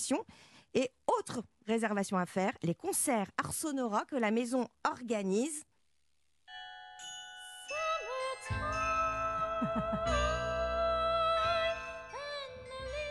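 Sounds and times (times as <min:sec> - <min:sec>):
speech: 0:00.0 - 0:05.7, 0:09.6 - 0:10.4
bells ringing with long shimmering tones: 0:06.5 - 0:13.0
single voice singing: 0:07.6 - 0:13.0.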